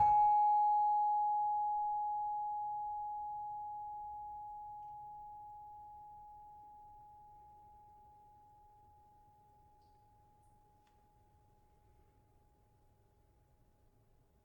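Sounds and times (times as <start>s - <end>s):
saron note in G sharp: 0.0s - 5.7s.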